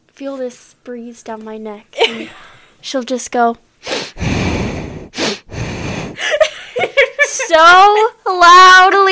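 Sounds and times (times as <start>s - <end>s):
speech: 0.2s - 3.7s, 7.5s - 9.1s
sniffs and snort-like gasps: 3.8s - 6.2s
person with asthma breathing loudly and heavily: 3.8s - 6.4s.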